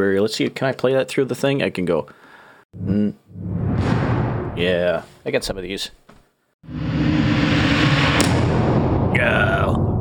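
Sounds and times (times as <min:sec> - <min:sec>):
speech: 0:00.0 - 0:03.2, 0:04.6 - 0:06.0
reversed explosion sound effect: 0:03.3 - 0:05.0, 0:06.6 - 0:09.9.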